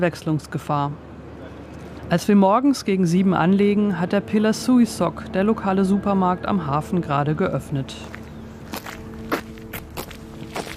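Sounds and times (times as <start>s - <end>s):
speech: 0.0s - 1.1s, 2.1s - 8.2s
footsteps walking up a windy, drizzly street: 7.8s - 10.7s.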